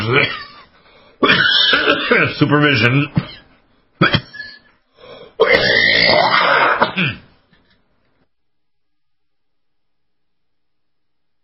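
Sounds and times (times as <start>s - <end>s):
speech: 0.0s - 0.4s, 1.2s - 3.3s, 4.0s - 4.3s
person coughing: 1.2s - 2.4s, 3.2s - 4.7s, 5.4s - 7.4s.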